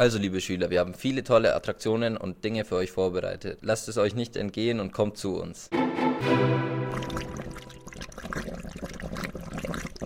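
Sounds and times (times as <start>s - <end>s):
speech: 0.0s - 6.6s
water pouring into an aquarium tank: 6.8s - 10.0s.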